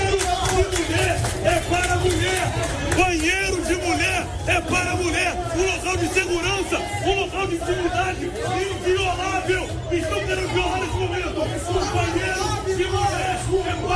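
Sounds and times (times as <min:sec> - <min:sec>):
people running: 0:00.0 - 0:06.4
crowd shouting at a political demonstration in a shopping mall: 0:00.0 - 0:13.9.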